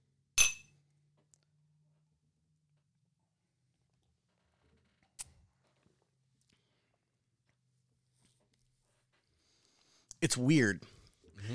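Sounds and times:
glasses of whiskey clinking in a toast: 0.4 - 0.7
speech: 10.2 - 11.5.

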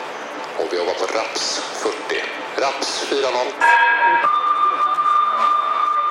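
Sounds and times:
speech: 0.6 - 4.5
Swedish fire station alarm tone: 3.6 - 6.0.

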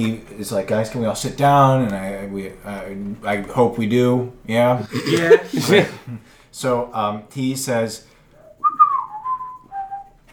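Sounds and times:
speech: 0.0 - 8.1
laughter: 4.7 - 6.3
person whistling a tune: 8.4 - 10.2.

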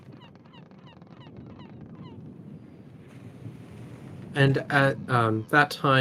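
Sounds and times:
shrill seagull calls: 0.0 - 2.8
ocean waves roaring: 2.9 - 5.7
speech: 4.4 - 5.9.

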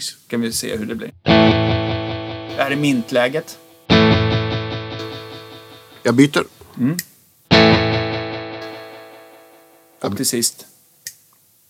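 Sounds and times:
speech: 0.0 - 1.7, 2.6 - 3.6, 6.0 - 7.8, 10.0 - 10.7
distorted guitar note through a fast echo pedal with feedback: 1.2 - 6.1, 7.5 - 9.8.

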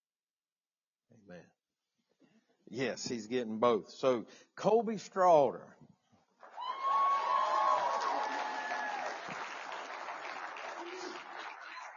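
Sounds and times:
speech: 1.3 - 1.6, 2.7 - 5.8
crowd clapping at a graduation ceremony: 6.4 - 11.9
rowdy crowd cheering at a graduation ceremony: 6.4 - 11.9
people whooping: 6.5 - 11.9.

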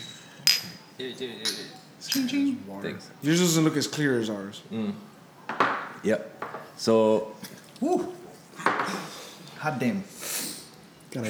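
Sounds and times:
glasses clinking in a toast: 0.0 - 4.1, 5.4 - 6.9, 8.5 - 9.3
speech: 1.0 - 5.1, 6.0 - 8.2, 9.6 - 10.2.

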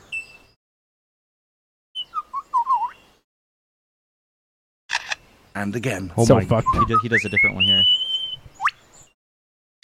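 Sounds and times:
bird chirp: 0.0 - 0.6, 2.0 - 3.2, 6.4 - 9.2
forest bird mimicking a camera shutter and motor drive: 4.9 - 5.2
speech: 5.6 - 8.1.

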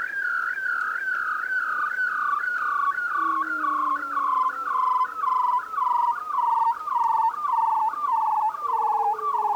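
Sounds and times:
fainter lower gliding whistles: 0.0 - 9.5
bearded seal trilling with wavering pulsed tone: 3.2 - 6.0.

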